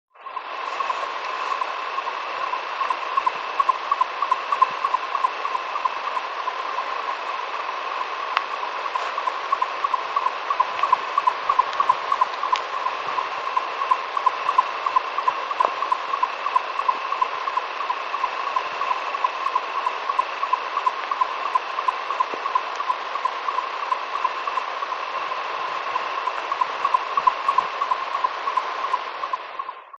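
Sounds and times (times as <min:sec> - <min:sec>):
golden nightjar at Oued Jenna: 0:00.2 - 0:29.9.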